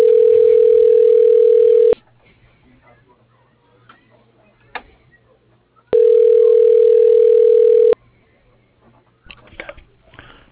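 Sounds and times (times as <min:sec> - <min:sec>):
telephone ringback tone during call transfer: 0:00.0 - 0:02.0, 0:06.0 - 0:08.0.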